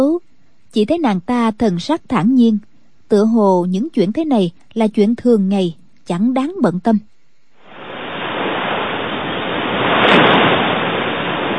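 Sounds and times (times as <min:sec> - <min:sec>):
speech: 0:00.0 - 0:07.1
night tide surging on a river where it meets the sea: 0:07.6 - 0:11.5.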